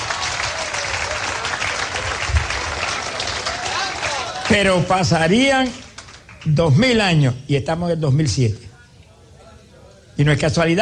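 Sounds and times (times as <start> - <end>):
audience applauding: 0.0 - 6.8
speech: 4.5 - 5.8, 6.4 - 8.6, 10.2 - 10.8.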